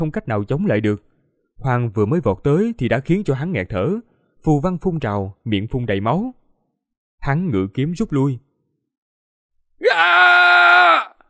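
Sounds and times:
speech: 0:00.0 - 0:06.4, 0:07.2 - 0:08.4
man shouting loudly: 0:09.8 - 0:11.2.

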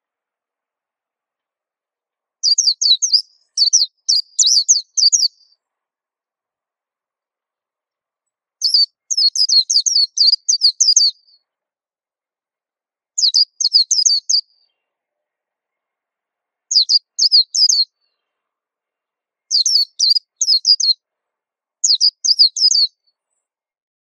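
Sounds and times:
white-eye song: 0:02.4 - 0:05.6, 0:08.6 - 0:11.4, 0:13.2 - 0:14.7, 0:16.7 - 0:18.2, 0:19.5 - 0:21.0, 0:21.8 - 0:23.0.

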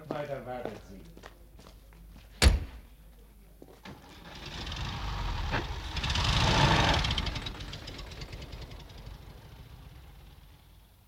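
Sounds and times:
speech: 0:00.2 - 0:01.3
car door thudding shut: 0:02.4 - 0:02.8
car engine as the vehicle pulls away: 0:03.8 - 0:11.0.

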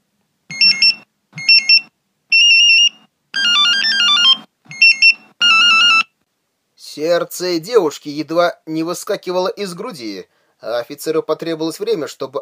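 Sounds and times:
telephone ringing with an electronic melodic ringtone: 0:00.5 - 0:06.1
speech: 0:07.0 - 0:12.4.

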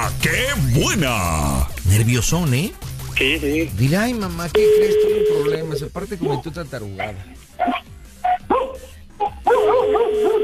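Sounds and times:
speech: 0:00.3 - 0:07.8
dog barking: 0:06.2 - 0:10.4.

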